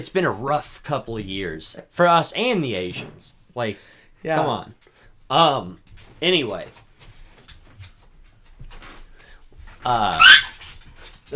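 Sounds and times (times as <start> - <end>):
speech: 0.0 - 6.8, 9.8 - 10.5
overstimulated dog squawking: 10.0 - 10.8.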